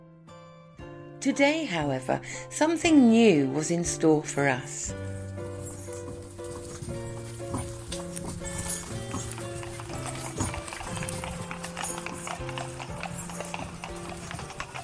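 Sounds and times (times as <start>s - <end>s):
speech: 1.2s - 5.2s
horses clip-clopping while being led: 5.0s - 14.8s.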